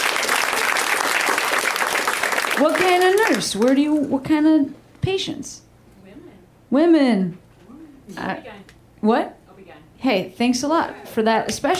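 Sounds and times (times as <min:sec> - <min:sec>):
crowd applauding: 0:00.0 - 0:03.8
speech: 0:02.6 - 0:05.6, 0:06.7 - 0:07.4, 0:08.1 - 0:09.4, 0:10.0 - 0:11.7.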